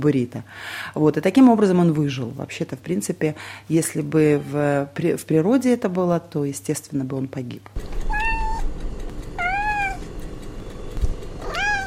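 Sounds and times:
speech: 0.0s - 8.2s
cat meowing: 4.3s - 4.7s, 8.0s - 8.7s, 9.4s - 10.1s, 11.4s - 11.8s
low steady rumble: 7.8s - 11.8s.

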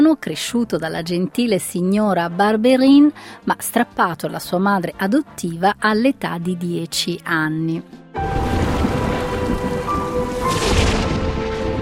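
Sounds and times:
speech: 0.1s - 8.7s
heavy rain pouring in a storm: 8.2s - 11.8s
low thunder rumbling through a storm: 8.2s - 11.8s.

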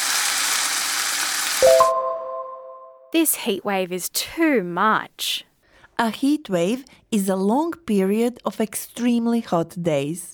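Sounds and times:
food sizzling in a hot frying pan: 0.0s - 1.7s
speech: 3.1s - 10.3s.

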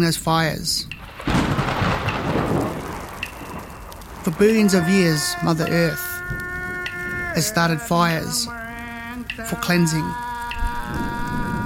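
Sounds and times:
speech: 0.0s - 1.0s, 4.2s - 6.4s, 7.4s - 8.6s, 9.2s - 10.3s
hiss of falling rain: 0.0s - 11.6s
deep rolling rumble of thunder from a storm: 1.0s - 9.1s, 10.6s - 11.6s.

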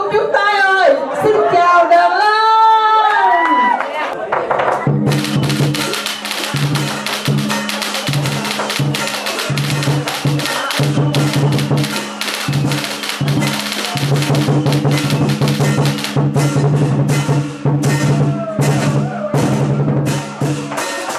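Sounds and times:
crowd chatter: 0.0s - 2.9s, 3.7s - 21.1s
lion dance drums pounding steadily: 4.4s - 21.1s
dense crackling bursts of electronic firecrackers: 5.1s - 16.6s.

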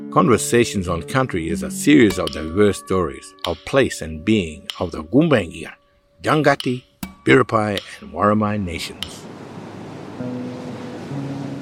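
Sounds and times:
speech: 0.2s - 9.3s
ocean surf washing: 7.8s - 11.5s.

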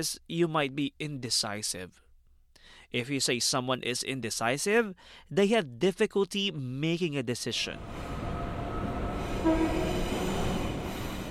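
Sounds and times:
speech: 0.0s - 2.0s, 2.7s - 8.2s
interior rumble of a moving passenger train: 7.6s - 11.2s.

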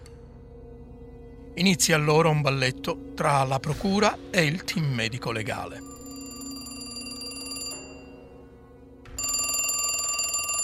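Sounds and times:
speech: 1.6s - 6.0s
old-style telephone bell ringing: 5.8s - 8.4s, 9.1s - 10.6s.

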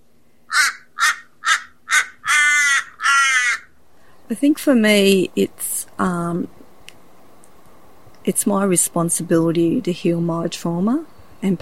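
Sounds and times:
crow cawing: 0.5s - 3.8s
speech: 4.3s - 6.6s, 8.2s - 11.6s.

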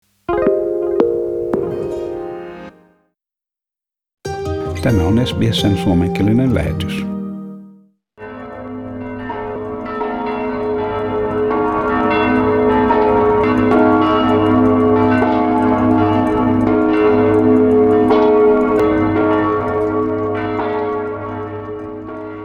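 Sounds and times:
church bells in the Czech Republic ringing to mark a year since first COVID-19 death: 0.4s - 2.7s, 8.2s - 22.4s
speech: 4.8s - 7.2s.

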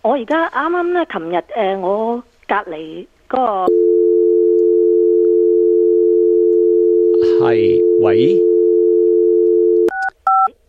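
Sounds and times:
speech: 0.0s - 4.0s, 7.4s - 8.4s
telephone dial tone: 3.7s - 10.5s.

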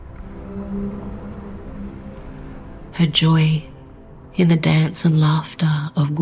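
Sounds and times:
low whale song: 0.0s - 4.3s
speech: 3.0s - 3.7s, 4.4s - 6.2s.

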